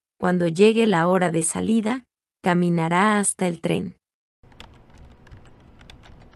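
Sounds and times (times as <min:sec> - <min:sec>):
speech: 0:00.2 - 0:04.0
typing on a computer keyboard with a braille display by a person programming: 0:04.5 - 0:06.3.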